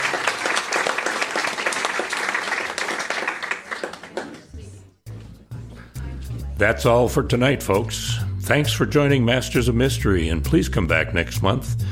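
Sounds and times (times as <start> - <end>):
audience applause at a book event: 0.0 - 4.6
speech: 6.6 - 11.8.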